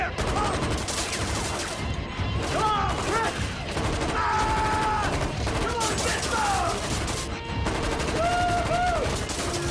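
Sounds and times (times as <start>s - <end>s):
gunshots fired into a floor inside a building: 0.1s - 9.6s.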